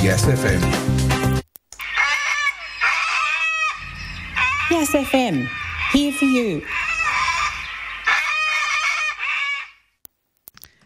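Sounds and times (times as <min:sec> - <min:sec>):
speech: 0:00.0 - 0:01.0, 0:04.7 - 0:06.8
cockatoo squawking: 0:01.8 - 0:09.8.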